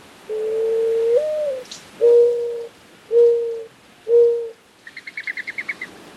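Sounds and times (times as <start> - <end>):
mourning dove cooing: 0.3 - 4.6.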